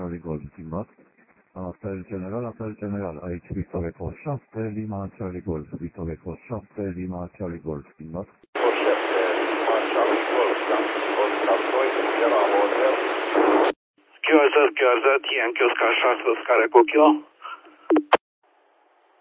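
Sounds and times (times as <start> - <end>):
band-limited voice transmission crackling over the radio: 0.0 - 0.9, 1.6 - 13.6, 14.2 - 17.7
speech: 0.1 - 8.6, 14.6 - 17.3
amateur radio static and interference: 8.6 - 17.7.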